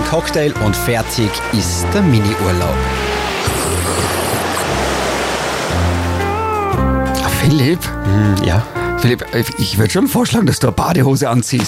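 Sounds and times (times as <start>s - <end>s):
speech: 0.1s - 3.2s, 7.4s - 11.6s
ocean surf: 2.8s - 6.7s.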